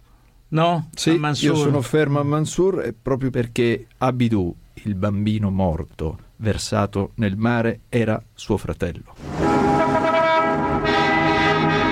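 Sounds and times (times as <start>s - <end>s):
speech: 0.5s - 9.4s
car horn blaring at a city intersection: 9.2s - 11.9s.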